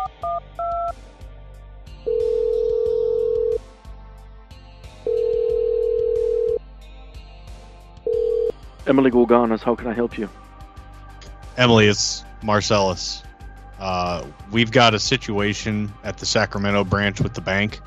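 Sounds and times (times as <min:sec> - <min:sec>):
telephone touch-tone keypad beeps: 0:00.0 - 0:00.9
low rhythmic background: 0:00.0 - 0:17.8
telephone ringing tones: 0:02.1 - 0:03.6, 0:05.1 - 0:06.6, 0:08.1 - 0:08.5
speech: 0:08.9 - 0:10.4, 0:11.6 - 0:13.2, 0:13.8 - 0:17.8.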